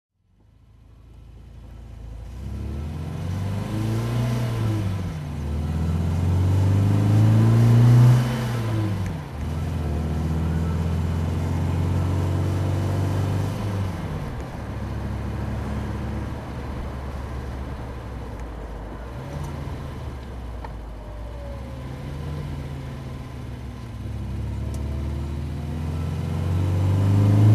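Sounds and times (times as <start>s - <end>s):
1972 MG MGB roadster engine driving: 0.3s - 27.5s.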